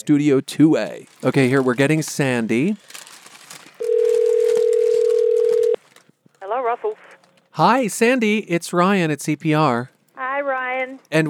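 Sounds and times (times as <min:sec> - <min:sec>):
speech: 0:00.0 - 0:03.0, 0:07.6 - 0:11.2
faint room noise: 0:00.0 - 0:11.2
telephone dial tone while placing a phone call from a studio: 0:03.8 - 0:05.8.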